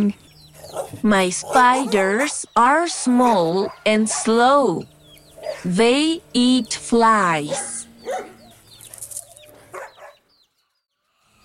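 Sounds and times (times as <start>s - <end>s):
speech: 0.0s - 0.3s, 0.9s - 7.8s
pet dog barking: 0.6s - 4.4s, 5.4s - 5.7s, 7.4s - 8.6s, 9.7s - 10.2s.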